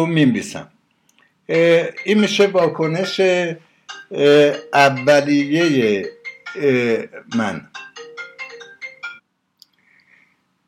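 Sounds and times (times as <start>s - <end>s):
speech: 0.0s - 0.8s, 1.5s - 7.9s
telephone with a bright melodic ringtone: 1.6s - 9.2s.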